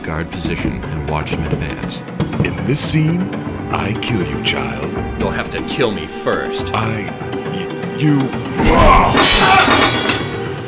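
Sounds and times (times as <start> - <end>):
speech: 0.1 - 10.3
sword blade shattering on impact: 8.8 - 10.6.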